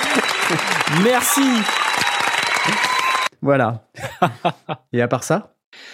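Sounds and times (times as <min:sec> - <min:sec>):
laughter: 0:00.0 - 0:01.3, 0:04.0 - 0:04.9
single person clapping hands in applause: 0:00.0 - 0:03.3
speech: 0:00.5 - 0:01.9, 0:02.6 - 0:05.9.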